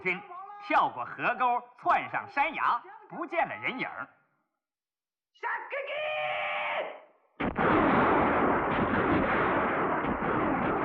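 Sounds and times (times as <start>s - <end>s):
speech: 0.0s - 4.2s, 5.4s - 6.0s
gunfire echoing through a valley: 7.4s - 10.8s
sharp gunshot cracks: 7.4s - 10.8s.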